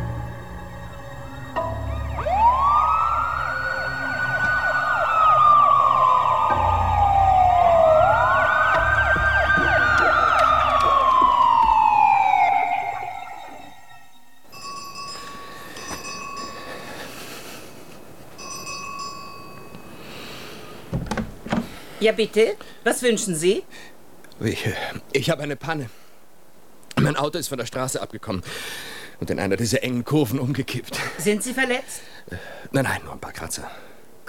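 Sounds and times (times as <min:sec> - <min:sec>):
alarm siren wailing: 0:00.1 - 0:14.5
speech: 0:22.0 - 0:26.0, 0:27.0 - 0:34.2.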